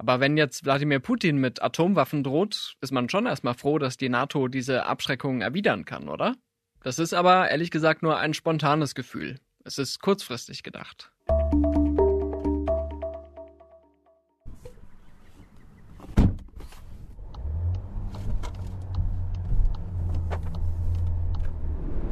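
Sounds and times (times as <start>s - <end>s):
speech: 0.0s - 11.8s
short musical passage: 11.3s - 14.3s
brief thump: 16.0s - 16.7s
low engine and road rumble inside a moving car: 16.0s - 22.0s.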